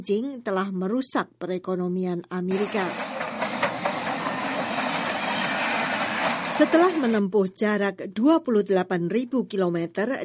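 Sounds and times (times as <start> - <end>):
speech: 0.0 - 3.4, 6.6 - 10.2
freight train rolling on rails: 2.5 - 7.3.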